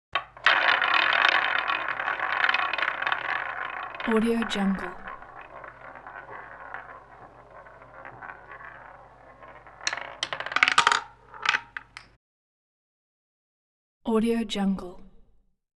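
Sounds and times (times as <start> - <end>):
roulette ball dropping: 0.0 - 12.1
roulette wheel spinning: 0.0 - 12.1.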